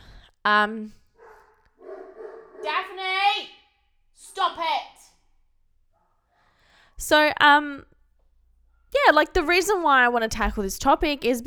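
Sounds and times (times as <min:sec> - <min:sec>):
speech: 0:00.4 - 0:01.0, 0:04.4 - 0:04.9, 0:07.0 - 0:07.9, 0:08.9 - 0:11.4
dog barking: 0:01.2 - 0:03.3.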